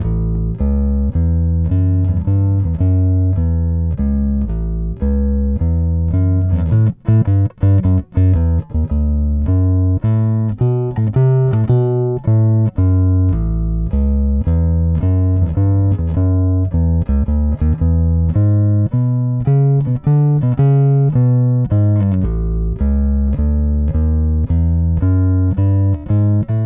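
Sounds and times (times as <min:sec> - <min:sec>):
blues bass: 0:00.0 - 0:26.6.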